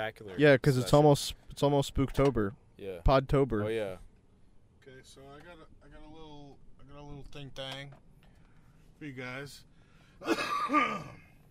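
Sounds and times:
speech: 0.0s - 4.1s, 4.9s - 6.2s, 7.0s - 8.1s, 9.0s - 11.2s
throat clearing: 10.2s - 11.4s.

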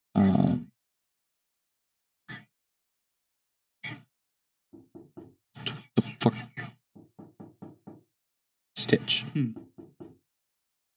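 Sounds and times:
solid knocks on a door: 4.8s - 5.8s, 7.0s - 8.1s, 8.8s - 10.2s
speech: 8.8s - 9.7s.

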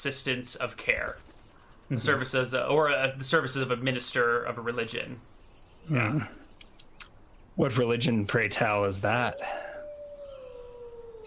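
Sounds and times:
speech: 0.0s - 6.4s, 7.6s - 9.6s
wolf howling: 9.0s - 11.2s.

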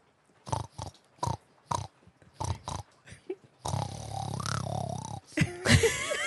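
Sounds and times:
person snorting like a pig as a dare in truth or dare: 0.5s - 2.9s, 3.6s - 5.4s
person longer rougher grunting snort: 3.7s - 5.4s
laughter: 5.3s - 6.2s.

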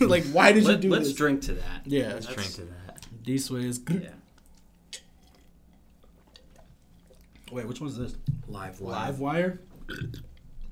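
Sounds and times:
speech: 0.0s - 4.2s, 7.5s - 10.3s
person burping after drinking soda: 9.8s - 10.4s.

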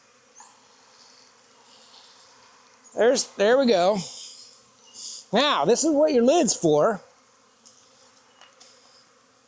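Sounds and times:
many honeybees buzzing on a hive frame: 0.0s - 9.4s
speech: 3.0s - 4.2s, 5.3s - 7.1s.

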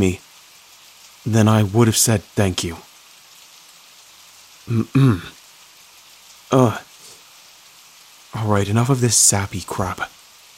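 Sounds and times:
speech: 0.0s - 0.2s, 1.2s - 2.9s, 4.7s - 5.4s, 6.5s - 6.9s, 8.3s - 10.2s
rain falling: 0.0s - 10.5s
short vocal bursts: 4.7s - 5.4s.

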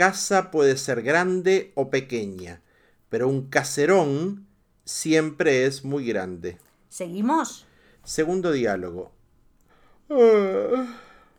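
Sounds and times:
speech: 0.0s - 9.2s, 10.1s - 11.0s
person yawning: 10.1s - 11.3s.

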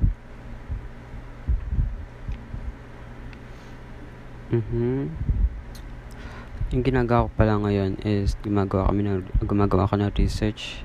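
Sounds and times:
air buffeting the microphone: 0.0s - 2.8s, 4.5s - 10.8s
electric fan running: 0.0s - 10.8s
speech: 4.5s - 5.4s, 6.7s - 10.8s.

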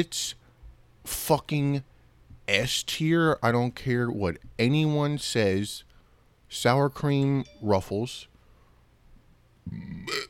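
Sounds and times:
speech: 0.0s - 0.4s, 1.0s - 1.9s, 2.5s - 5.9s, 6.5s - 8.3s, 9.6s - 10.2s
person burping: 9.7s - 10.2s.

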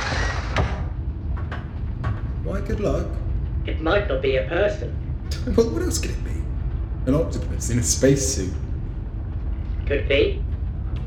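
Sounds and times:
mechanical sliding spaceship cockpit door opening: 0.0s - 2.3s
steady low rumble: 0.0s - 11.0s
speech: 2.6s - 6.4s, 7.1s - 8.6s, 9.9s - 10.5s.

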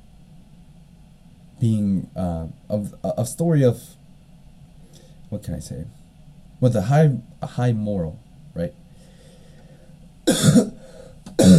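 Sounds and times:
speech: 1.6s - 4.0s, 5.3s - 6.0s, 6.6s - 8.8s, 10.3s - 10.7s
person coughing harshly: 10.3s - 11.5s.

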